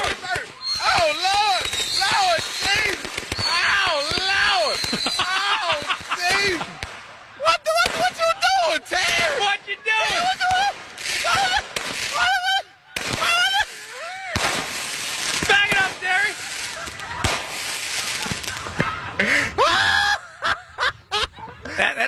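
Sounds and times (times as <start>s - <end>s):
fireworks banging and crackling in bursts: 0.0s - 22.0s
people shouting and screaming: 0.0s - 22.0s
people laughing: 3.6s - 14.4s, 15.6s - 22.0s.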